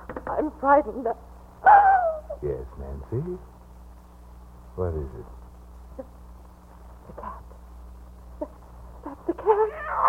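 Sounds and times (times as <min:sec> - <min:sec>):
low steady hum: 0:00.0 - 0:10.0
speech: 0:00.4 - 0:01.8, 0:02.4 - 0:03.5, 0:04.8 - 0:05.4, 0:09.3 - 0:10.0
cat meowing: 0:09.6 - 0:10.0.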